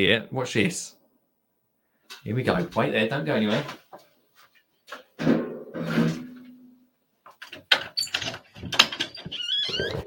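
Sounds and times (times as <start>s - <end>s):
speech: 0.0s - 1.0s, 2.2s - 3.8s
garden door scraping open: 5.2s - 6.4s, 7.8s - 10.0s
door latch clicking and rattling: 7.4s - 9.3s.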